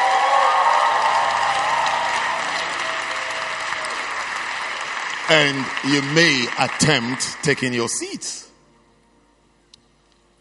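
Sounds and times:
audience applause, hand clapping: 0.0 - 8.3
speech: 5.3 - 8.5.

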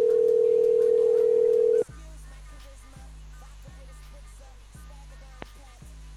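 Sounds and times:
steady electronic ringing tone of an outgoing phone call: 0.0 - 1.8.

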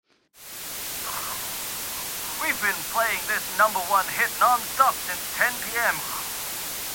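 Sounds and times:
radio static while tuning between stations: 2.2 - 6.9
speech: 2.4 - 6.2.

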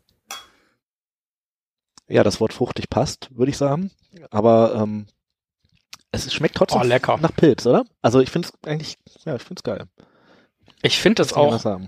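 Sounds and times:
glasses clinking in a toast: 0.3 - 0.6
speech: 2.1 - 5.2, 6.1 - 10.1, 10.8 - 11.8.

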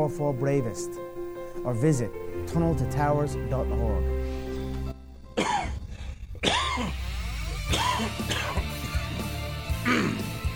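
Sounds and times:
speech: 0.0 - 4.4, 6.4 - 7.0, 7.7 - 8.5
man coughing into an open microphone: 5.4 - 7.0, 7.6 - 9.1, 9.8 - 10.4
throat clearing: 5.4 - 7.0, 7.7 - 9.1, 9.8 - 10.4.

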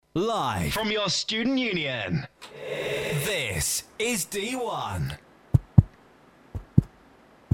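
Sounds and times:
speech: 0.2 - 5.2
deep thumping heartbeat in lub-dub pairs: 5.5 - 5.9, 6.6 - 6.9.

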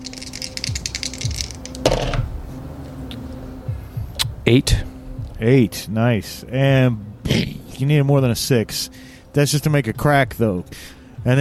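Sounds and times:
two dice rattling in a hand: 0.0 - 2.1
low hum: 0.0 - 11.3
speech: 4.5 - 11.3.

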